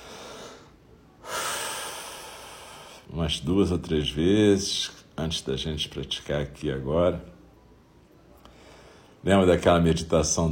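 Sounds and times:
deep breathing during guided zazen meditation: 0.0s - 3.1s
speech: 3.1s - 7.3s, 9.2s - 10.4s.

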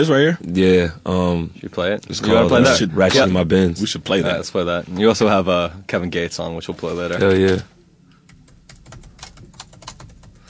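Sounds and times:
speech: 0.0s - 7.8s
low hum: 0.0s - 10.4s
typing on a computer keyboard: 8.3s - 10.4s.

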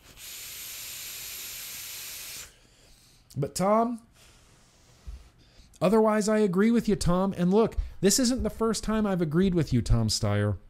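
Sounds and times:
vape draw through a rebuildable dripping atomizer hissing: 0.0s - 2.6s
speech: 3.4s - 4.1s, 5.8s - 10.6s.

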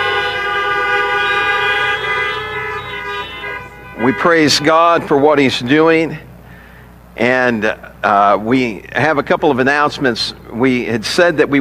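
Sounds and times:
car horns honking: 0.0s - 6.2s
speech: 4.1s - 6.3s, 7.2s - 11.5s.

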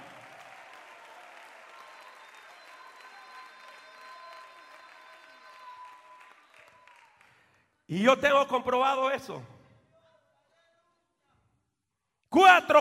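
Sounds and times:
large crowd applauding: 0.0s - 7.7s
speech: 7.9s - 9.5s, 12.6s - 12.7s.

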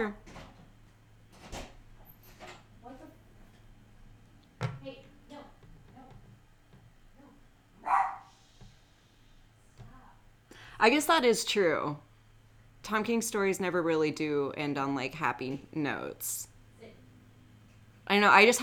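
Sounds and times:
speech: 0.0s - 0.3s, 10.8s - 12.1s, 12.9s - 16.5s, 18.1s - 18.6s
room noise: 0.0s - 18.6s
dog barking at a cat: 7.8s - 8.3s.

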